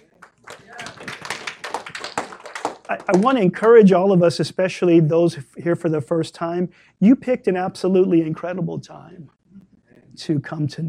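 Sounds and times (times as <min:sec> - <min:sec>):
audience clapping hands: 0:00.0 - 0:03.9
speech: 0:02.9 - 0:09.4, 0:10.2 - 0:10.8.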